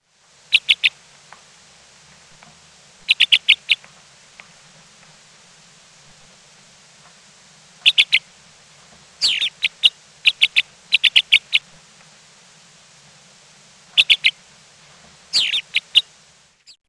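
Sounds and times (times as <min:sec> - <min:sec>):
black rosy finch calling: 0:00.5 - 0:01.0, 0:03.0 - 0:03.9, 0:07.8 - 0:08.3, 0:09.2 - 0:11.8, 0:14.0 - 0:14.4, 0:15.3 - 0:16.8.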